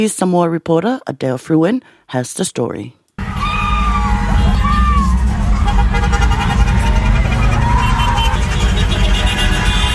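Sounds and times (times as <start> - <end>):
speech: 0.0 - 3.0
car engines rumbling in a street car parade in Samoa: 3.2 - 9.9
fans cheering and shouting on the sidelines: 3.2 - 9.9.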